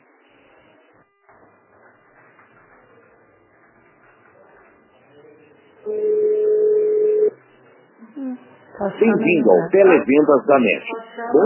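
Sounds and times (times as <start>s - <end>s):
telephone keypad tone pressing 2 in an automated menu: 5.9s - 7.3s
speech: 8.8s - 11.4s.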